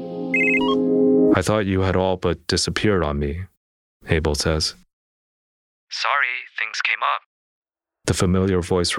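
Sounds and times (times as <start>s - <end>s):
telephone ringing with a steady electronic tone: 0.3s - 0.8s
speech: 1.4s - 4.9s, 5.9s - 7.3s, 8.1s - 8.9s.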